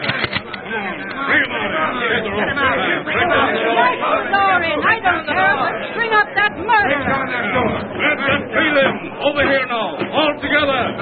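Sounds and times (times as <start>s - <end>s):
angry crowd murmuring and clamoring: 0.0s - 10.9s
speech: 6.8s - 10.9s.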